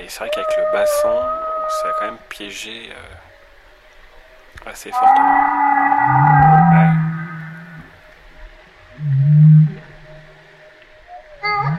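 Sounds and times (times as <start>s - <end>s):
humpback whale vocalizing with moaning tones and cries: 0.0s - 2.3s, 4.9s - 8.2s, 8.8s - 11.7s
speech: 0.1s - 3.3s, 4.6s - 6.3s.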